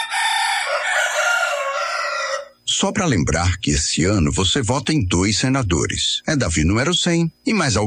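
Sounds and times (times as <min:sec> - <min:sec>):
two roosters crowing: 0:00.0 - 0:02.6
speech: 0:02.8 - 0:07.8.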